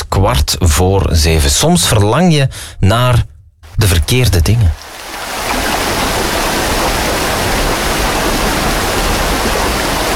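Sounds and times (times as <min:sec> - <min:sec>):
speech: 0:00.2 - 0:04.9
flowing river water: 0:03.7 - 0:10.1.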